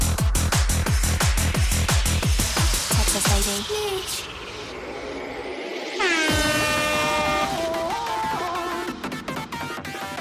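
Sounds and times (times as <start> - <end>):
steady rush: 0.1 - 10.1
air horn blast: 6.0 - 8.7.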